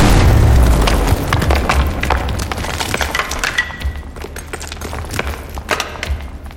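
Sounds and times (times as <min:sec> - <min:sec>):
explosion of a character bursting apart when punched: 0:00.0 - 0:04.3
crackling splintering debris: 0:00.0 - 0:06.5.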